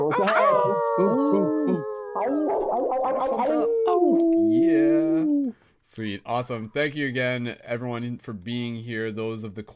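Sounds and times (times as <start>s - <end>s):
several people howling together like wolves: 0.0s - 5.5s
speech: 1.0s - 1.2s, 6.0s - 9.7s.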